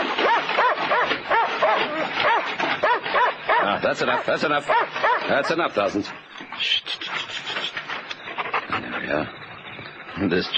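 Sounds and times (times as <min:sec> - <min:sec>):
dog barking behind a wire fence: 0:00.0 - 0:05.7
speech: 0:03.8 - 0:06.9, 0:09.1 - 0:09.4, 0:10.2 - 0:10.5.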